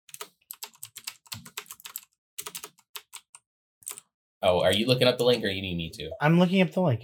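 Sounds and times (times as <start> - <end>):
typing on a clicky computer keyboard: 0.1 - 4.0
speech: 4.4 - 7.0.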